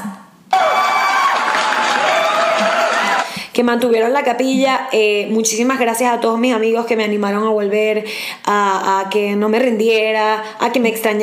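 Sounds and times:
shrill whistles: 0.5s - 3.2s
crowd applauding: 0.5s - 3.4s
speech: 3.6s - 11.2s.

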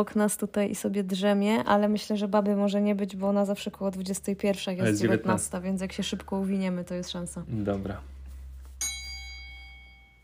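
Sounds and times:
speech: 0.0s - 8.1s
doorbell chime: 8.8s - 10.2s.

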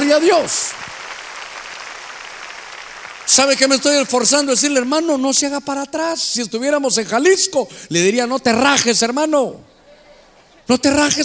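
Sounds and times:
church audience clapping loudly: 0.0s - 5.2s
speech: 0.1s - 0.9s, 3.3s - 9.8s, 10.7s - 11.2s.

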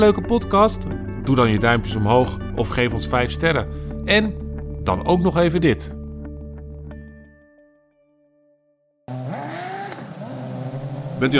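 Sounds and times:
speech: 0.0s - 6.0s, 11.2s - 11.3s
race car engines roaring and whining: 9.1s - 11.3s.

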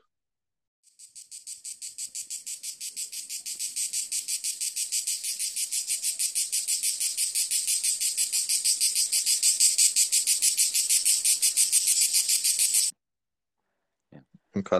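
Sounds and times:
crickets trilling in a summer meadow: 0.9s - 12.9s.

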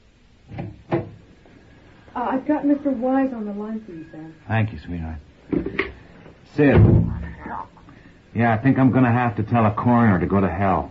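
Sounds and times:
wooden door opening and closing as someone leaves: 0.5s - 1.2s, 6.6s - 7.4s
speech: 2.2s - 5.6s, 6.5s - 7.8s, 8.4s - 10.8s.

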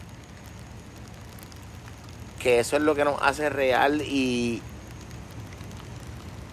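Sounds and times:
raindrops pattering: 0.0s - 6.5s
speech: 2.4s - 4.7s.

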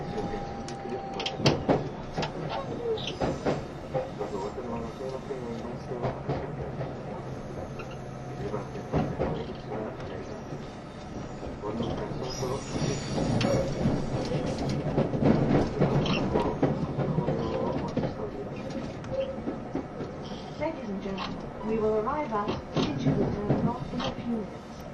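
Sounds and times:
E351 express train wheels and motors rumbling: 0.0s - 24.9s
sharp clicks and knocks from the track: 0.1s - 10.2s, 13.1s - 20.2s, 22.1s - 24.3s.

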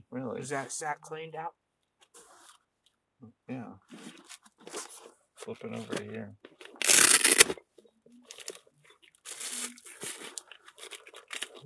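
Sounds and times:
speech: 0.1s - 1.6s, 3.2s - 4.8s, 5.4s - 6.5s
chocolate wrapper paper crinkling: 6.6s - 7.6s, 8.2s - 11.6s.

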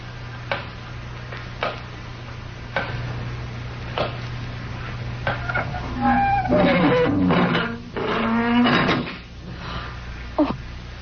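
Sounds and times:
low steady hum: 0.0s - 11.0s
heavy door creaking on its hinges and shutting: 5.5s - 9.2s.

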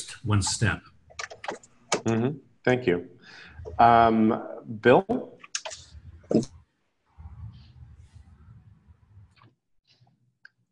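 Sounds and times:
speech: 0.0s - 0.9s, 2.0s - 5.3s, 6.3s - 6.6s
keyboard typing: 1.1s - 2.3s
low rumble: 7.2s - 9.4s.

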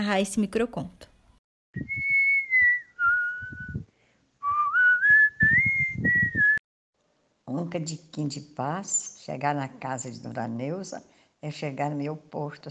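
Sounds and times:
speech: 0.0s - 1.1s, 7.5s - 12.6s
grandmother whistling a simple melody: 1.8s - 6.6s.

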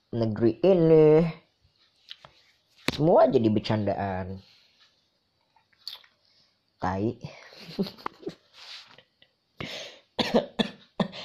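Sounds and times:
speech: 0.1s - 1.4s, 3.0s - 4.5s, 6.8s - 8.4s, 9.6s - 10.7s
raspy breathing between coughs: 9.6s - 10.2s
person coughing: 10.2s - 11.2s.

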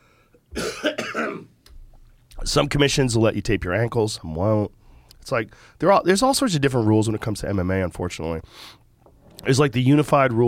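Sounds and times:
person coughing: 0.5s - 1.6s
speech: 2.4s - 8.8s, 9.4s - 10.4s.

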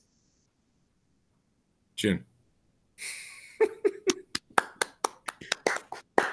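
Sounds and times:
speech: 2.0s - 2.3s, 3.0s - 3.2s
hand clapping: 4.1s - 6.3s.

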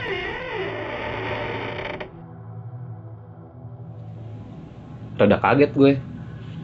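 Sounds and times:
wooden door creaking open: 0.0s - 2.2s
speech: 5.2s - 6.1s.

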